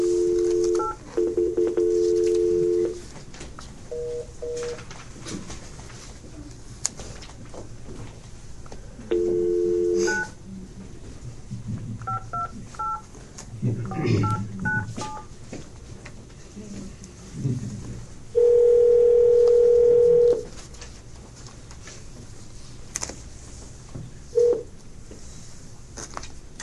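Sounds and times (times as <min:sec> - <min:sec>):
telephone dial tone: 0:00.0 - 0:03.0, 0:09.1 - 0:10.3, 0:18.4 - 0:20.5, 0:24.4 - 0:24.6
telephone dialing tones: 0:00.0 - 0:03.0, 0:03.9 - 0:04.8, 0:09.1 - 0:10.4, 0:12.1 - 0:13.0, 0:14.2 - 0:15.2, 0:18.4 - 0:20.5, 0:24.4 - 0:24.6
faint room noise: 0:00.0 - 0:26.6.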